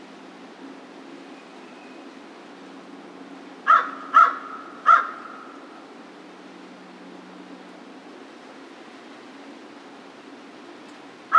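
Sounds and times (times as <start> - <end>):
American crow cawing: 3.7 - 5.6.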